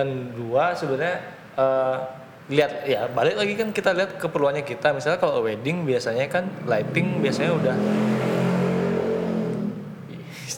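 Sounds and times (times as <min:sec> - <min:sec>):
speech: 0:00.0 - 0:08.4
motorcycle roaring past: 0:06.5 - 0:10.4.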